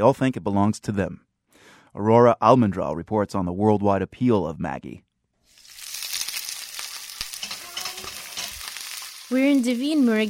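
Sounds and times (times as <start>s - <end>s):
speech: 0.0s - 1.3s, 1.9s - 5.1s, 9.3s - 10.2s
onions frying in a hot pan: 5.5s - 10.2s.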